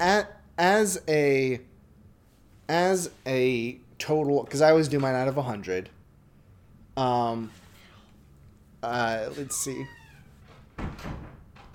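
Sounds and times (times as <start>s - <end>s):
speech: 0.0s - 1.7s, 2.7s - 6.0s, 7.0s - 7.6s, 8.8s - 10.0s
room noise in a recording room: 0.0s - 11.7s
door opening with a thud: 9.3s - 11.7s.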